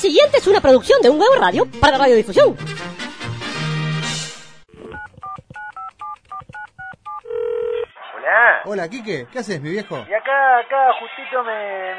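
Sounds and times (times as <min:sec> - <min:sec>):
speech: 0:00.0 - 0:02.9, 0:08.6 - 0:11.9
telephone touch-tone dialing beeps: 0:04.8 - 0:07.8
longer steady telephone tone: 0:07.1 - 0:07.9.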